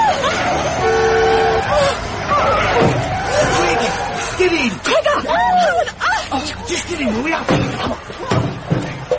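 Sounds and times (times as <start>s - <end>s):
constant rumble of traffic: 0.0s - 9.1s
vehicle horn honking: 0.8s - 1.7s
speech: 6.7s - 8.5s.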